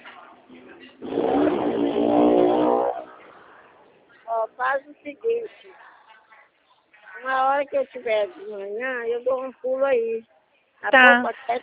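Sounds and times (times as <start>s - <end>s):
motorcycle roaring past on a street: 1.0s - 4.0s
speech: 4.8s - 5.9s, 7.2s - 11.6s.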